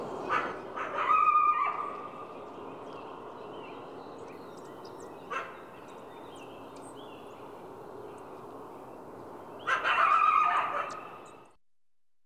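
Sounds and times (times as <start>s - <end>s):
coyote barking: 0.2s - 2.1s, 5.2s - 5.7s, 9.6s - 11.3s.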